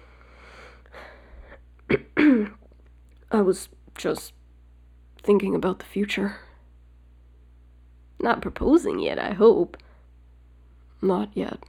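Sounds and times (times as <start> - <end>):
man clearing his throat: 1.9 - 2.6
speech: 3.3 - 4.4, 5.2 - 6.4, 8.2 - 9.8, 11.0 - 11.6.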